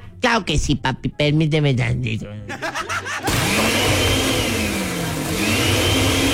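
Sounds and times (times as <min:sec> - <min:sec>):
speech: 0:00.4 - 0:04.2
laughter: 0:02.5 - 0:04.3
kitchen blender motor running at home: 0:03.2 - 0:06.3.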